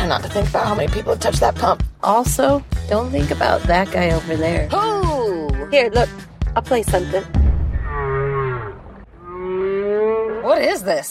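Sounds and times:
speech: 0.0 - 5.0, 5.7 - 7.4, 10.5 - 11.0
whale song moans: 7.8 - 10.7.

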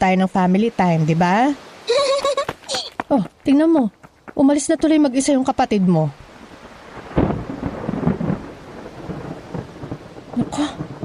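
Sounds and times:
speech: 0.0 - 1.7, 2.7 - 6.2
rain as a typhoon arrives: 0.0 - 11.0
laughter: 1.9 - 2.9
thunder as a typhoon arrives: 6.9 - 11.0.

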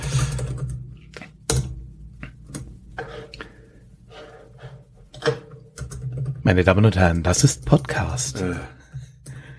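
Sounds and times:
computer keyboard typing while searching online: 0.1 - 1.7, 5.1 - 6.5
speech: 6.5 - 8.8.

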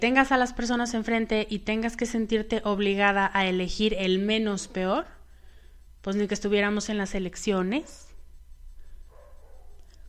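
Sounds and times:
speech: 0.0 - 5.2, 6.0 - 8.1
low steady hum: 0.0 - 10.0
dogs barking: 9.0 - 10.0.

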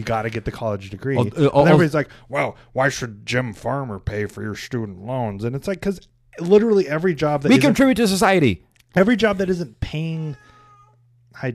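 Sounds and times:
speech: 0.0 - 10.5, 11.4 - 11.5
cat meowing: 10.2 - 11.0.

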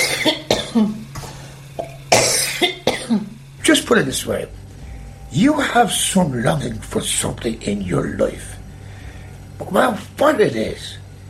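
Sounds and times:
wet coughs clearing phlegm: 0.0 - 1.1, 1.8 - 3.4
speech: 0.2 - 0.9, 3.9 - 4.6, 5.3 - 8.5, 9.6 - 11.0
raspy breaths: 8.7 - 9.5.

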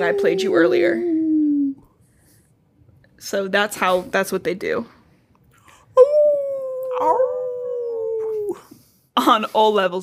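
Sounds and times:
speech: 0.0 - 1.1, 3.2 - 5.0, 9.2 - 10.0
wolf howling: 0.0 - 1.8, 6.0 - 8.6.

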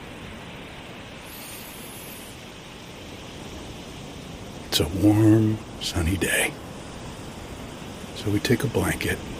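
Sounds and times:
sea waves gently lapping on beach: 0.0 - 9.3
speech: 4.8 - 6.6, 8.2 - 9.3.

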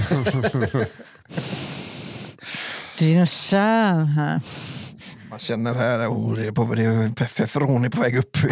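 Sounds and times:
laughter: 0.0 - 1.2
speech: 0.1 - 1.6, 3.0 - 8.5
imitated heavy breathing on a phone call: 0.9 - 3.0, 4.4 - 5.4.

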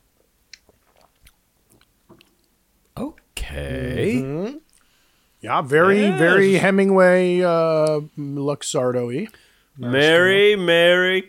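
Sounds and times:
person sipping a pink cocktail: 0.5 - 2.5
short loud slurp: 0.6 - 2.4
speech: 3.6 - 4.6, 5.4 - 11.2.

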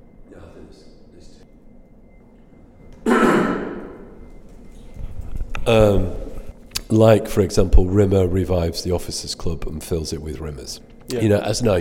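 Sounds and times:
person coughing: 3.0 - 4.0
speech: 5.7 - 6.2, 6.9 - 11.7.

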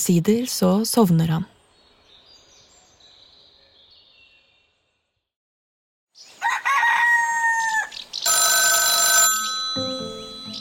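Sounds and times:
speech: 0.0 - 1.6
rooster crowing: 6.4 - 8.0
telephone bell ringing: 8.3 - 10.5.

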